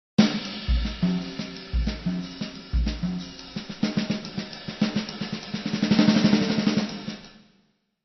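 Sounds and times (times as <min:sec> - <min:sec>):
jazz drum fills: 0:00.2 - 0:07.4.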